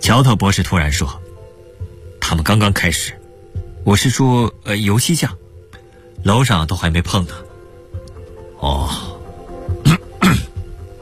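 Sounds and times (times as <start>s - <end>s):
speech: 0.1s - 1.3s, 2.3s - 3.2s, 3.8s - 5.4s, 6.2s - 7.5s
police inspector throat clearing: 9.8s - 10.6s.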